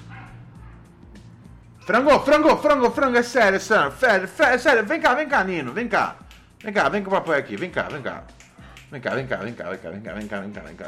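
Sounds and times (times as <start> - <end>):
dog barking: 0.0 - 1.0
low hum: 0.0 - 10.8
speech: 1.9 - 10.8.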